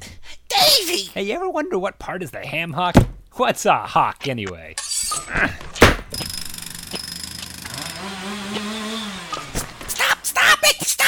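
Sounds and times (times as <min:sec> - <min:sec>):
speech: 0:00.8 - 0:05.7
electric power drill whining: 0:06.1 - 0:10.3.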